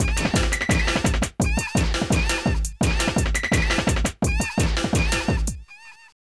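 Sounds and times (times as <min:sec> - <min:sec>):
techno drum loop: 0:00.0 - 0:05.7.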